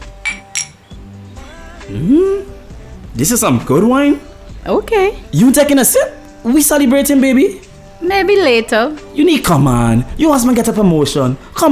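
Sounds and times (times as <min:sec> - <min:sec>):
wine glasses clinking in a toast: 0:00.0 - 0:01.0
speech: 0:01.9 - 0:02.6, 0:03.2 - 0:11.7.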